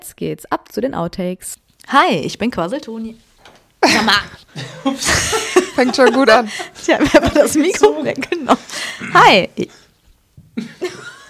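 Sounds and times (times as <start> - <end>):
speech: 0.1 - 9.8, 10.6 - 11.1
laughter: 3.8 - 9.4, 10.6 - 11.2
man clearing his throat: 9.0 - 9.4.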